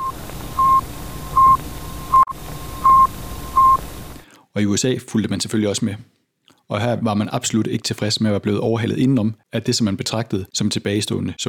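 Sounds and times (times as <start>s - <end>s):
satellite telegraphic radio signal with rapid even beeps: 0.0s - 3.9s
faint continuous radio carrier whine: 0.0s - 4.2s
steady hiss of radio static: 0.0s - 4.2s
speech: 4.6s - 6.1s, 6.7s - 11.4s.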